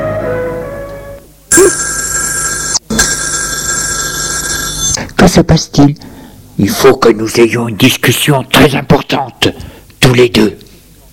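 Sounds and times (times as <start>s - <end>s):
telephone electric bell ringing: 1.5s - 5.0s
speech: 5.2s - 10.6s.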